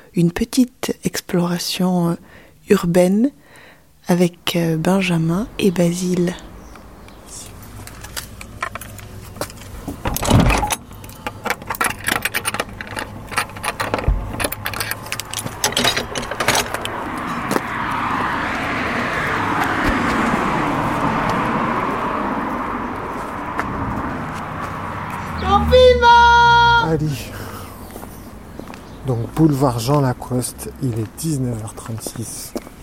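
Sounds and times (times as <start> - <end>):
speech: 0.2 - 3.4, 4.0 - 6.5, 29.4 - 32.6
car engine starting up on a city boulevard: 4.4 - 31.8
keys jangling and clattering: 10.2 - 16.9.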